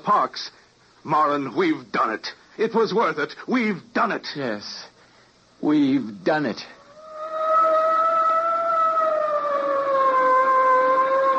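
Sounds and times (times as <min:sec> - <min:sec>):
speech: 0:00.0 - 0:04.9, 0:05.6 - 0:06.8
police boat siren wailing on the water off New York: 0:06.9 - 0:11.3.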